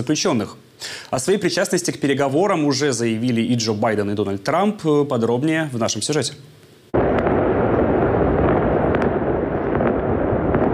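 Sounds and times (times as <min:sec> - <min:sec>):
speech: 0:00.0 - 0:06.6
celebratory fireworks crackling and booming: 0:06.9 - 0:10.7.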